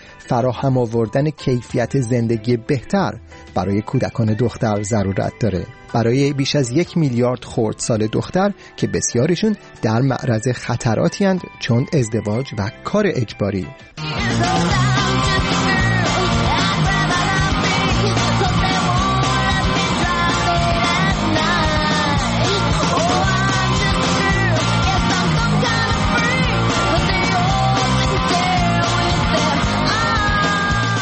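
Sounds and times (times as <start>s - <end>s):
speech: 0.2s - 15.6s
1995 alternative rock song with female vocals and full band: 13.8s - 31.0s
female lead vocal in alternative rock song: 14.0s - 31.0s.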